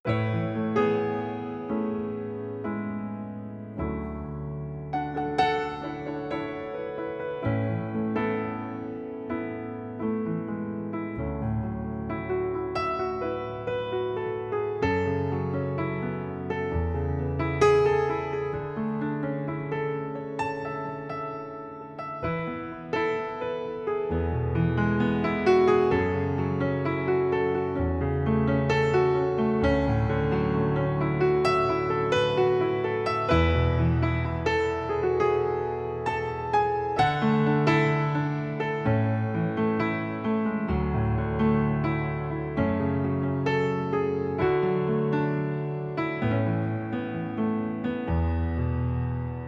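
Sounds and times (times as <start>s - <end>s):
piano: 0.0s - 49.4s.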